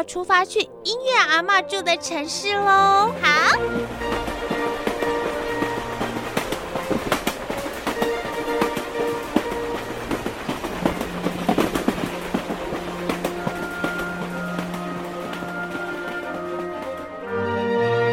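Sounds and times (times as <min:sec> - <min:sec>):
speech: 0:00.0 - 0:04.8
passenger train rumbling along rails: 0:02.1 - 0:18.0
train wheels clacking over track joints: 0:03.6 - 0:17.2.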